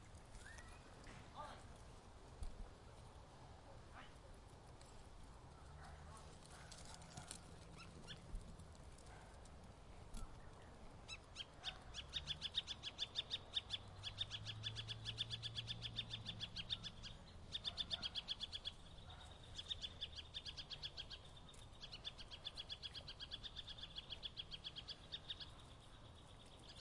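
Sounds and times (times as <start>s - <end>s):
low background noise: 0.0s - 26.7s
birds chirping in a suburban setting: 10.2s - 26.7s.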